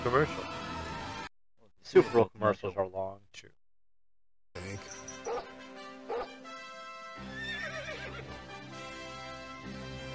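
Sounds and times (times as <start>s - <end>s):
speech: 0.0s - 0.6s, 1.9s - 3.6s
dogs barking: 5.0s - 6.4s
horse whinnying: 7.2s - 8.4s.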